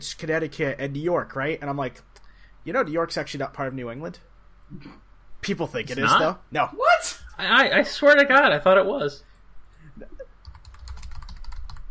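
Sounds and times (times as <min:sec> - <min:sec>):
speech: 0:00.0 - 0:09.3, 0:10.0 - 0:10.2
typing on a computer keyboard: 0:10.4 - 0:11.8.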